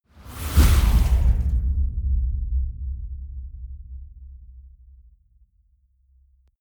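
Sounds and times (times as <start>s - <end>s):
wind gust hit: 0.0s - 3.1s.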